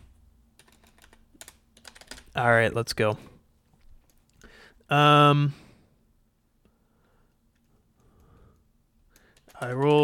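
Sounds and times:
typing on a computer keyboard: 0.6s - 2.4s, 9.1s - 10.0s
speech: 2.4s - 3.3s, 4.9s - 5.6s, 9.6s - 10.0s.

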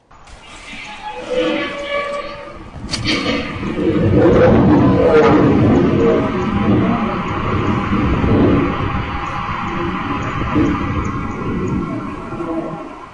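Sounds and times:
lion growling and roaring in a cage: 2.6s - 13.1s.

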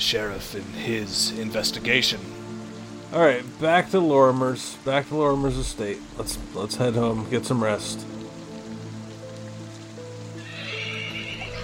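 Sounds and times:
speech: 0.0s - 2.5s, 3.1s - 8.1s
steady rain hissing: 0.0s - 11.6s
horse whinnying in long drawn-out neighs: 10.4s - 11.6s.

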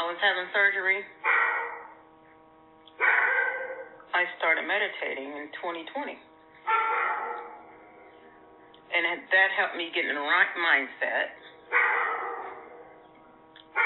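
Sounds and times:
speech: 0.1s - 1.3s, 4.2s - 7.5s, 8.9s - 11.9s
dog barking in sharp high yips: 1.2s - 2.0s, 3.0s - 4.0s, 6.7s - 7.8s, 11.7s - 13.0s.

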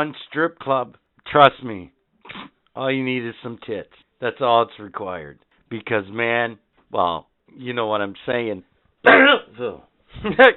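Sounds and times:
speech: 0.0s - 10.5s
man clearing his throat: 2.3s - 2.6s, 9.1s - 9.5s.

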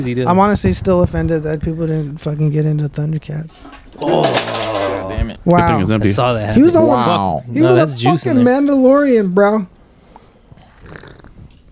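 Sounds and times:
speech: 0.0s - 9.8s
gulping noises: 10.5s - 11.7s
loud slurping sip from a drink: 10.6s - 11.7s.

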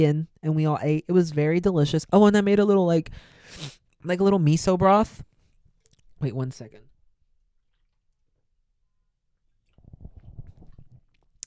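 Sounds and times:
speech: 0.0s - 5.3s, 6.2s - 6.9s
person sipping a drink: 9.6s - 11.4s.

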